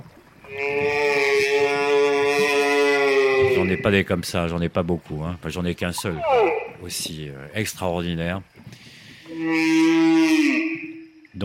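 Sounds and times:
humpback whale call: 0.4 - 4.0, 6.0 - 6.9, 9.1 - 11.4
speech: 0.5 - 1.0, 3.6 - 8.8, 9.4 - 10.2
faint watery hiss: 3.6 - 9.5.

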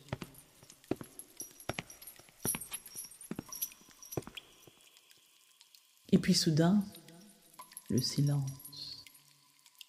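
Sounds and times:
hard boot footsteps on a solid surface: 0.0 - 4.8
speech: 6.1 - 7.0, 7.9 - 8.6.

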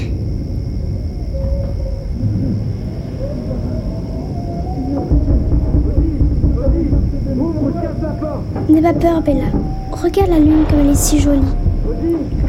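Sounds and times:
thunder rumbling: 0.0 - 12.4
indistinct voices: 3.2 - 12.4
speech: 8.7 - 11.6.

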